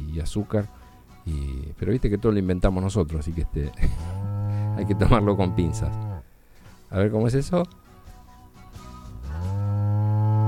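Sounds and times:
speech: 0:00.2 - 0:04.2, 0:04.8 - 0:06.1, 0:06.9 - 0:07.8
dairy cow mooing: 0:04.0 - 0:06.2, 0:09.3 - 0:10.4.

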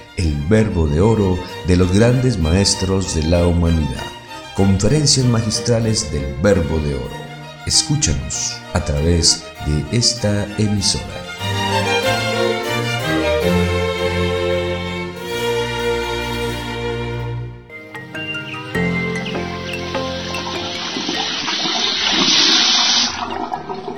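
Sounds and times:
speech: 0:00.2 - 0:11.3
musical passage: 0:00.4 - 0:23.9
water running from an open faucet: 0:19.1 - 0:23.9.

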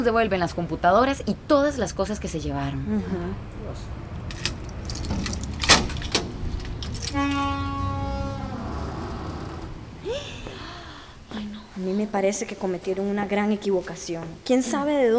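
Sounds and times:
speech: 0:00.0 - 0:04.0, 0:11.8 - 0:15.1
low rumble: 0:00.0 - 0:11.3
keys jangling: 0:04.3 - 0:07.5
door being unlocked: 0:04.3 - 0:07.6.

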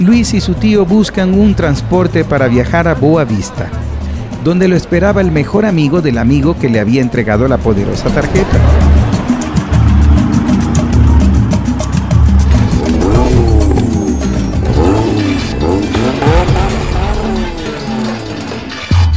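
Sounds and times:
speech: 0:00.0 - 0:03.8, 0:04.4 - 0:09.0
armored car and truck engines revving: 0:07.5 - 0:19.0.

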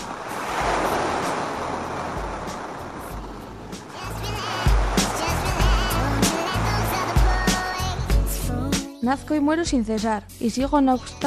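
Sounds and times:
sea waves breaking on shore: 0:00.0 - 0:08.5
speech: 0:09.1 - 0:11.2.

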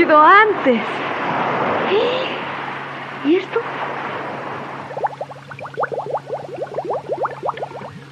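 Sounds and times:
speech: 0:00.0 - 0:02.4, 0:03.2 - 0:04.1
water bubbling and gurgling in small pops: 0:04.7 - 0:08.1.

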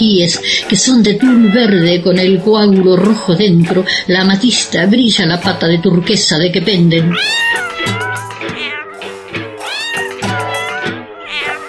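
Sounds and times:
speech: 0:00.0 - 0:08.0
cat meowing: 0:01.0 - 0:02.4, 0:06.9 - 0:11.6.

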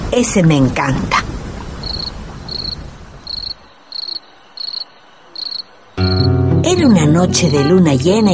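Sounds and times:
speech: 0:00.1 - 0:01.3, 0:06.9 - 0:08.3
cricket chirping: 0:01.8 - 0:06.4.

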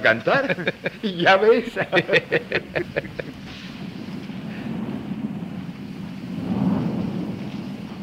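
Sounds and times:
speech: 0:00.0 - 0:03.4
laughter: 0:00.0 - 0:03.5
steady rain pouring: 0:00.0 - 0:08.0
deep rumbling undertone: 0:02.0 - 0:07.6.

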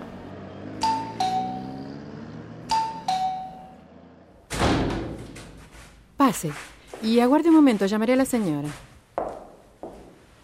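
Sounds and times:
two-tone doorbell chiming: 0:00.8 - 0:01.9, 0:02.7 - 0:03.8
heavy thump like a door opening or closing: 0:04.5 - 0:05.5
speech: 0:06.3 - 0:08.9.

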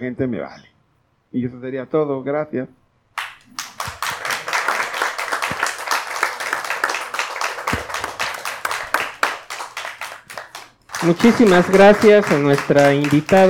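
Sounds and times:
speech: 0:00.0 - 0:00.7, 0:01.3 - 0:02.8, 0:11.0 - 0:13.4
audience applause: 0:03.2 - 0:13.4.

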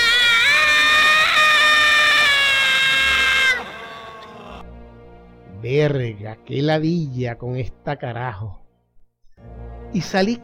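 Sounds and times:
woman screaming in terror: 0:00.0 - 0:04.6
speech: 0:05.7 - 0:08.6, 0:09.4 - 0:10.4.

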